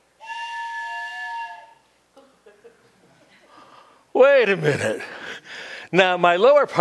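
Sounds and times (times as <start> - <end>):
train whistle in a pitch-dark rail tunnel: 0.2 - 1.9
speech: 4.2 - 5.2, 5.9 - 6.7.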